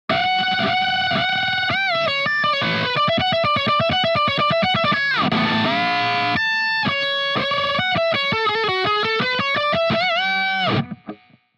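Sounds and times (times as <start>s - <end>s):
guitar with wah off: 0.1s - 11.5s.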